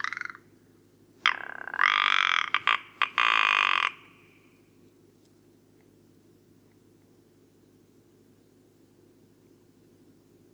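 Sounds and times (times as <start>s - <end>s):
faint low hum: 0.0s - 10.5s
rock ptarmigan giving harsh rattling croaks: 1.2s - 4.1s.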